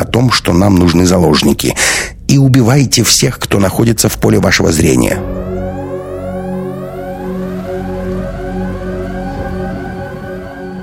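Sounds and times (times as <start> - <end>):
speech: 0.1 - 5.4
steady low drone: 4.6 - 10.8
sirens wailing under a metal airlock ceiling: 5.0 - 10.8.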